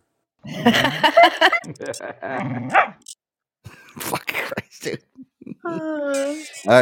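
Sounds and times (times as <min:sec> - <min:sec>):
laughter: 0:00.5 - 0:02.6
speech: 0:00.6 - 0:03.1, 0:04.0 - 0:06.8
dog barking and yipping: 0:02.7 - 0:03.0.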